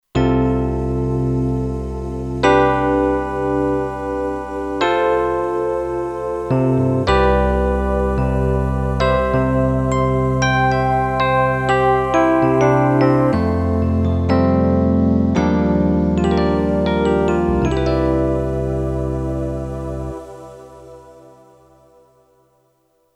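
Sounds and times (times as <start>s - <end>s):
Kurzweil K2500X motion pad synthesizer sound: 0.2s - 22.7s.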